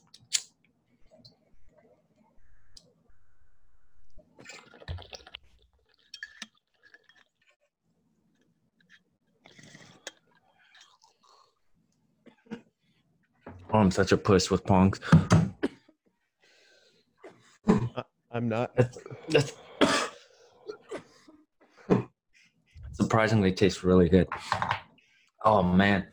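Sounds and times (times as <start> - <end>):
water bubbling through a bong during a long inhale: 4.4 - 7.1
speech: 13.8 - 15.4, 18.5 - 19.6, 23.2 - 24.8, 25.5 - 26.1.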